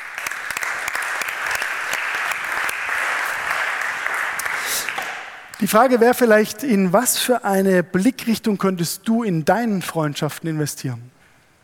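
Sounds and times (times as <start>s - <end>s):
audience clapping: 0.0s - 5.6s
speech: 5.6s - 11.2s.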